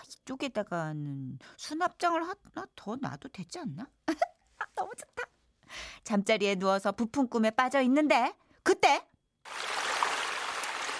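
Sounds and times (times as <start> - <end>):
speech: 0.3 - 9.7
loud roar of rushing water: 9.5 - 10.9.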